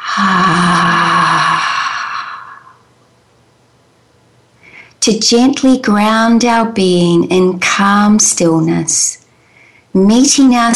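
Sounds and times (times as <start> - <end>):
relaxed breath out with low hum during guided group meditation: 0.0 - 2.9
speech: 0.2 - 0.8, 5.1 - 9.2, 10.0 - 10.7.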